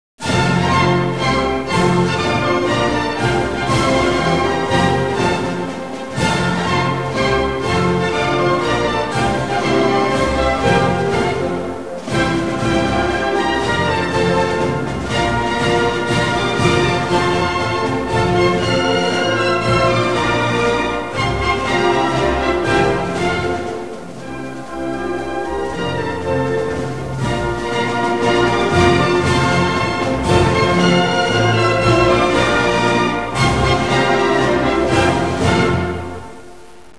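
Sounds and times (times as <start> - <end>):
national anthem: 0.2 - 36.8.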